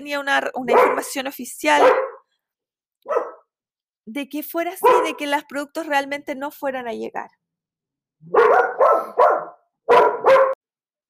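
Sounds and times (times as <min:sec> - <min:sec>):
speech: 0:00.0 - 0:02.1, 0:04.1 - 0:07.4, 0:08.2 - 0:08.4
dogs barking excitedly: 0:00.6 - 0:02.2, 0:03.0 - 0:03.4, 0:04.8 - 0:05.3, 0:08.3 - 0:10.6.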